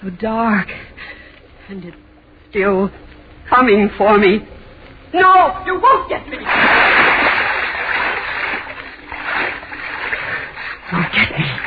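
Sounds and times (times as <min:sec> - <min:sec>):
speech: 0:00.0 - 0:00.9, 0:01.7 - 0:06.9
person swimming and splashing through a dark river: 0:06.4 - 0:11.6.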